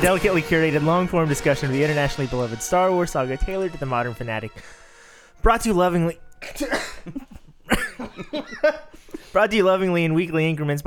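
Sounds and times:
speech: 0:00.0 - 0:04.8, 0:05.4 - 0:10.8
sharp harsh coughs with raspy throat noise: 0:06.4 - 0:09.4.

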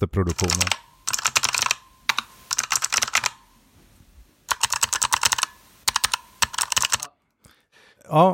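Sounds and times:
speech: 0:00.0 - 0:00.8, 0:08.1 - 0:08.3
clicky typing on a mechanical keyboard with tactile purple switches and O-rings: 0:00.3 - 0:03.4, 0:04.5 - 0:07.1.

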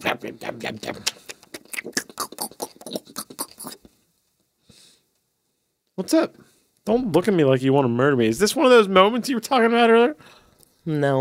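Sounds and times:
speech: 0:00.0 - 0:01.2, 0:06.1 - 0:11.2
person chewing eggs: 0:01.1 - 0:03.9.

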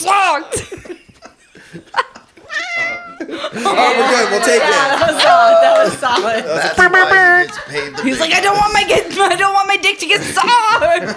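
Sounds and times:
speech: 0:00.0 - 0:00.8, 0:03.6 - 0:11.1
laughter: 0:00.3 - 0:11.1
person imitating a cat meow: 0:02.6 - 0:03.2.

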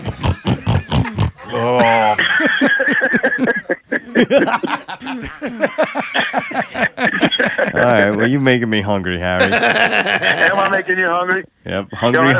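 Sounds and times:
person imitating pig grunting and snorting: 0:00.0 - 0:02.2
laughter: 0:00.0 - 0:08.4, 0:09.4 - 0:10.9
people chattering: 0:00.0 - 0:10.9
speech: 0:04.2 - 0:06.4, 0:07.8 - 0:12.3.

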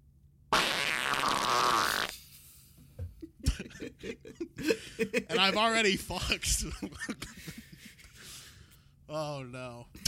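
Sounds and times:
loud drawn-out buzzy fluttering fart: 0:00.5 - 0:02.2
speech: 0:05.0 - 0:07.4, 0:09.1 - 0:09.9.

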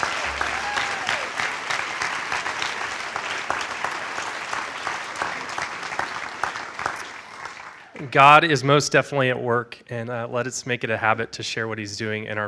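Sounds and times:
room full of people applauding: 0:00.0 - 0:08.4
speech: 0:08.1 - 0:12.4.

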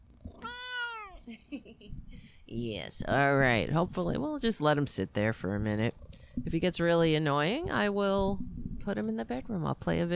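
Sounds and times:
cat meowing loudly: 0:00.4 - 0:01.2
speech: 0:01.3 - 0:10.1.

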